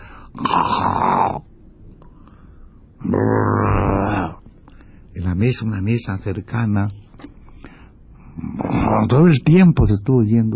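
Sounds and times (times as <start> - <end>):
voice imitating snoring: 0.4 - 1.4, 3.0 - 4.4
speech: 5.4 - 7.0, 9.0 - 10.5.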